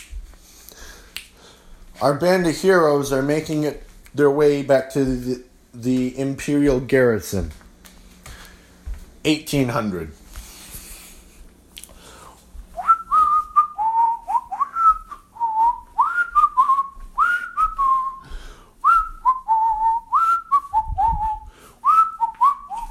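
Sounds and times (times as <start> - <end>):
speech: 2.0 - 7.6, 9.2 - 10.2
person whistling a wandering tune: 12.8 - 22.8.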